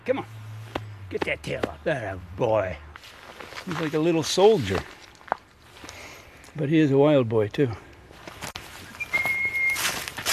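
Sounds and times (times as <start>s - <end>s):
speech: 0.0s - 0.4s, 1.1s - 5.0s, 6.6s - 7.9s
person whistling to call cats: 8.9s - 9.9s.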